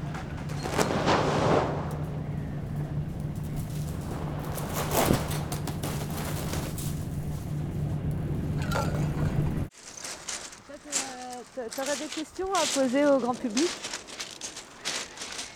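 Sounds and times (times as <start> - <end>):
wind: 0.0 - 15.5
boat engine drone by the sea: 2.0 - 9.7
speech: 11.7 - 13.9.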